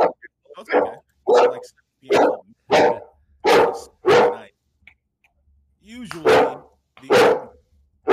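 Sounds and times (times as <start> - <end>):
dog barking: 0.0 - 4.5, 6.2 - 8.1
speech: 0.6 - 1.0, 1.6 - 2.2.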